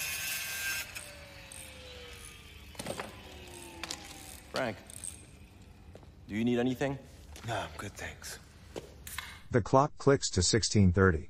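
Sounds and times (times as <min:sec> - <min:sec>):
grinder throwing sparks in an old auto shop: 0:00.0 - 0:06.0
speech: 0:04.6 - 0:04.9, 0:06.3 - 0:08.4, 0:09.5 - 0:11.2.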